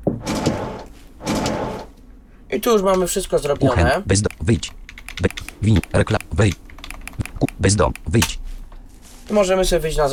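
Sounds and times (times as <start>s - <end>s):
video game elevator doors sliding, heading down: 0.2s - 1.9s
speech: 2.5s - 6.6s, 7.6s - 8.4s, 9.3s - 10.1s.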